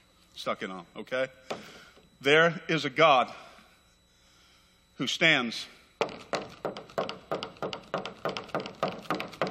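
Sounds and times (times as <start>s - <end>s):
speech: 0.4s - 3.5s, 5.0s - 6.2s
firm knocks on a wooden door put up on a set: 6.0s - 9.5s.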